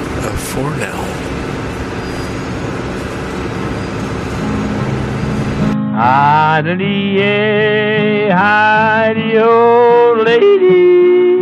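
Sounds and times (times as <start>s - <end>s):
train rumbling through a subway station: 0.0s - 5.8s
speech: 0.4s - 1.3s, 6.0s - 11.1s.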